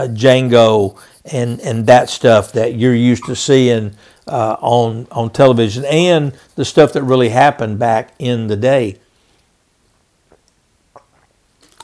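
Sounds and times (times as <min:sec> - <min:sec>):
speech: 0:00.0 - 0:09.0
person taking a quiet sip of water: 0:10.3 - 0:11.8
soft wet mouth clicks: 0:10.3 - 0:11.8
swallowing: 0:10.3 - 0:11.8.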